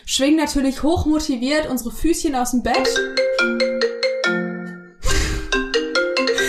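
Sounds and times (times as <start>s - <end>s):
speech: 0.0s - 3.7s
bright electronic alarm clock melody: 2.8s - 6.4s.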